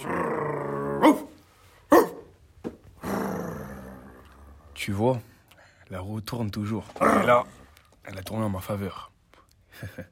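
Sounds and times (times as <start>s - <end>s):
dog growling in a low sustained rumble: 0.0s - 1.3s, 3.0s - 4.8s, 6.9s - 7.8s
speech: 1.0s - 1.2s, 4.8s - 5.3s, 5.9s - 9.1s, 9.8s - 10.1s
dog barking sharply: 1.0s - 2.3s.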